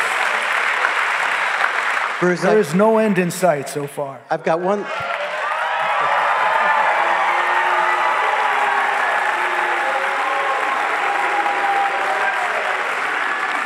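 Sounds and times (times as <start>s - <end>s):
scattered clapping: 0.0s - 2.4s, 5.0s - 13.6s
speech: 2.2s - 5.0s
large crowd booing: 4.8s - 13.6s.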